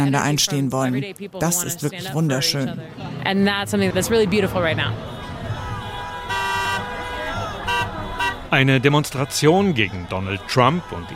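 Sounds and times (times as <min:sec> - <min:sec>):
speech: 0:00.0 - 0:05.2, 0:08.5 - 0:11.1
traffic: 0:00.0 - 0:11.1
crowd murmur: 0:02.1 - 0:11.1
passing car horns honking: 0:03.9 - 0:11.1.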